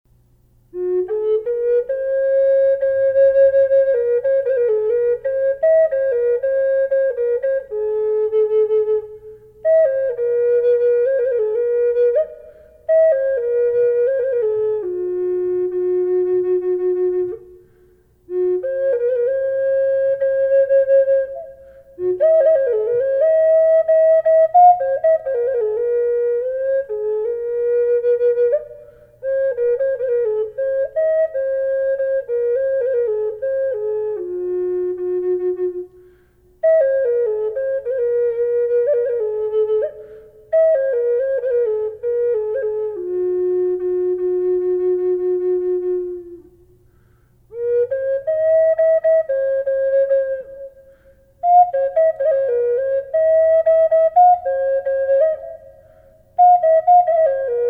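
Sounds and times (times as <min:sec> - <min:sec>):
desert ironwood flute with reverb: 0:00.7 - 0:57.6.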